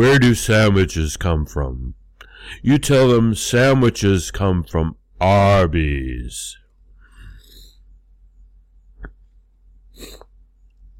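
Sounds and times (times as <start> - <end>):
speech: 0.0 - 6.6
person sneezing fit: 10.0 - 10.3.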